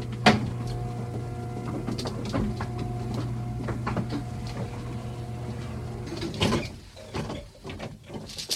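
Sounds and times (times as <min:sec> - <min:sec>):
elevator descending with mechanical hum: 0:00.0 - 0:06.7
elevator clunks and rattles on stopping: 0:00.0 - 0:07.8.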